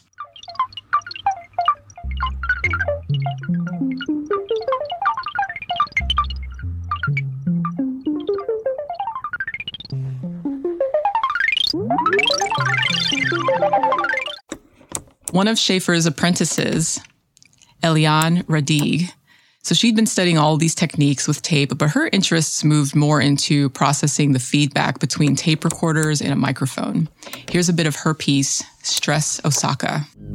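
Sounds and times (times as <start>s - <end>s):
single water-drop plink looped at variable speeds: 0.1s - 10.0s, 11.1s - 14.4s
speech: 15.4s - 17.1s, 17.9s - 30.2s.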